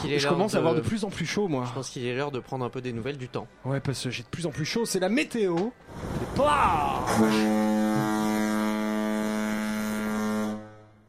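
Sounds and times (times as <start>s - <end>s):
speech: 0.0s - 8.1s
loud deep foghorn blast: 7.0s - 11.0s.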